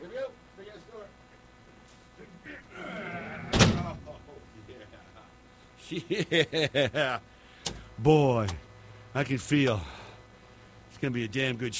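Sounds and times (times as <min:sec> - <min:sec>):
laughter: 0:02.3 - 0:07.3
heavy door slamming shut: 0:03.3 - 0:04.2
speech: 0:05.9 - 0:07.3, 0:08.0 - 0:08.6, 0:09.2 - 0:10.0, 0:11.0 - 0:11.7.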